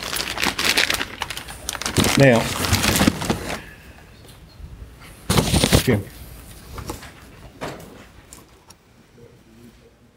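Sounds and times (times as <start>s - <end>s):
brown paper evidence bag crinkling: 0.0s - 3.7s, 5.3s - 6.0s
speech: 2.2s - 2.7s, 5.9s - 6.2s.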